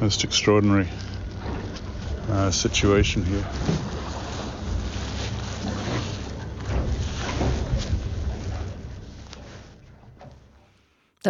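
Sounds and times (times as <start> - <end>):
speech: 0.0 - 1.2, 2.3 - 3.9
steady low rumble of a small boat on open water: 0.0 - 10.8
sloshing water on open water: 0.0 - 11.0.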